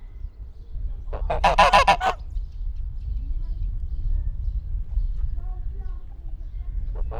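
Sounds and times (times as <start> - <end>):
low wind rumble: 0.0 - 7.1
domestic goose honking in a zoo farmyard: 1.2 - 2.2.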